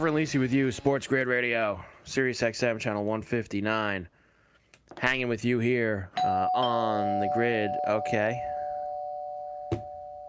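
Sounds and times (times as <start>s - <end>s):
speech: 0.0s - 4.2s, 4.9s - 8.5s
doorbell ringing with electronic tone: 6.2s - 10.2s.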